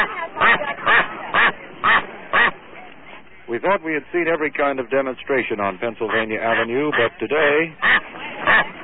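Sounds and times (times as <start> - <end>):
ducks quacking: 0.0 - 2.6, 5.8 - 8.8
softer chatter: 0.0 - 8.8
speech: 3.7 - 8.0.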